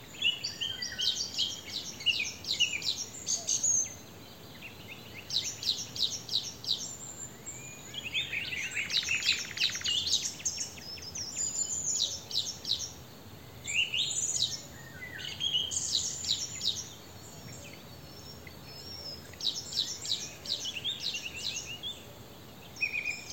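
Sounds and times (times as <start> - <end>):
Eurasian wren Troglodytes troglodytes singing: 0.0 - 23.3.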